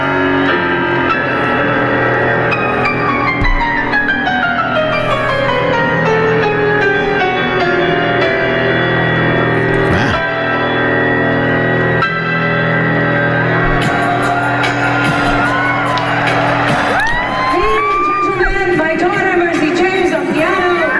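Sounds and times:
piano played live on stage with rich sustained chords: 0.0s - 20.9s
dense concert crowd cheering loudly: 13.5s - 20.4s
fan in concert crowd screaming and whooping: 13.6s - 18.8s.

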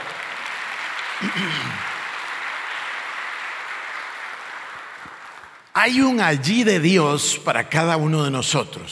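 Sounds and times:
audience applause: 0.0s - 6.2s
speech: 1.2s - 1.9s, 5.8s - 8.8s
person's voice rising over applause: 5.8s - 8.8s.

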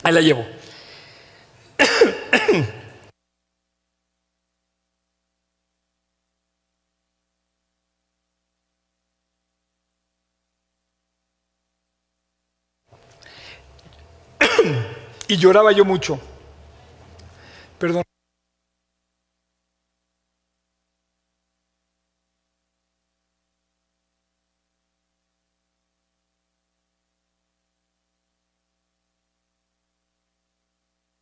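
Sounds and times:
speech: 0.0s - 0.7s, 2.5s - 2.8s, 15.3s - 16.3s, 17.8s - 18.1s
faint hiss: 0.0s - 31.2s
person clearing throat: 1.8s - 3.0s, 14.4s - 15.0s
person coughing: 1.8s - 3.1s, 14.4s - 15.1s.

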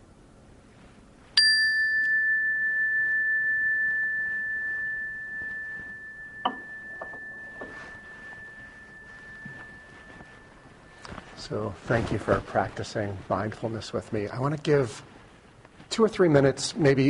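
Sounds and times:
meditation bell ringing: 1.4s - 11.7s
speech: 11.5s - 15.1s, 16.0s - 17.0s.

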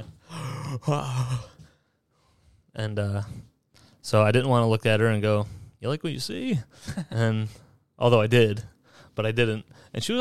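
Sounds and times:
voice performing exaggerated heavy groaning breaths: 0.0s - 3.9s
speech: 0.8s - 1.5s, 2.8s - 10.1s.

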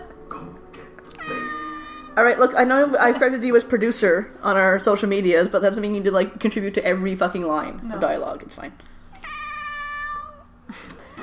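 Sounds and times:
cat meowing: 1.1s - 2.2s, 9.2s - 11.2s
speech: 2.2s - 8.9s.

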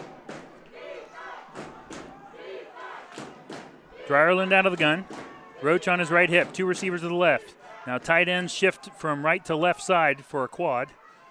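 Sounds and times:
football crowd chanting defense: 0.0s - 10.4s
speech: 4.1s - 11.0s.

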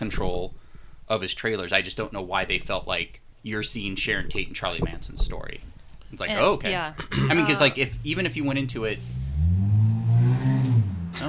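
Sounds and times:
speech: 0.0s - 9.2s
car engine revving as the car drives past fast on a street: 7.9s - 11.2s.

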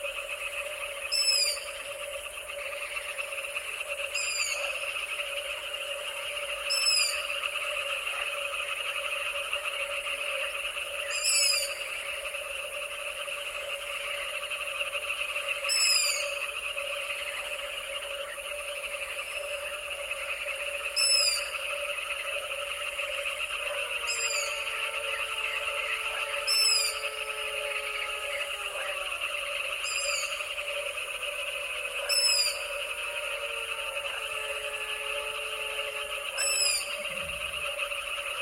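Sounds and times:
frogs calling at night in the Danube Delta: 0.0s - 38.4s
jackals howling in long wavering falling wails: 23.5s - 29.9s, 31.6s - 37.0s.

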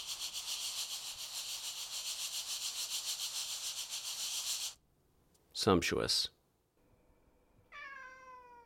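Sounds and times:
dry grains of rice swirling around a bowl: 0.0s - 4.8s
speech: 5.6s - 6.4s
cat meowing: 7.7s - 8.6s.

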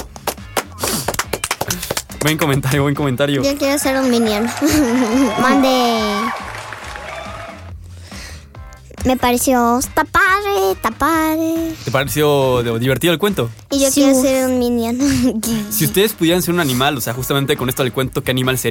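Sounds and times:
children clapping: 0.0s - 2.8s, 3.4s - 7.7s
speech: 1.7s - 6.4s, 9.0s - 18.7s
laughter: 4.4s - 5.6s.

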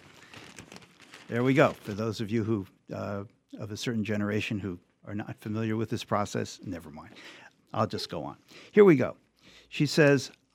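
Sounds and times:
newspaper pages rustling: 0.0s - 2.2s
speech: 1.3s - 10.5s.

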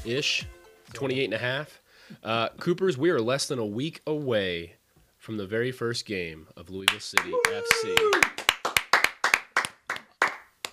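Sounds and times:
speech: 0.0s - 8.4s
rhythmic clapping in quick pairs: 6.8s - 10.7s.

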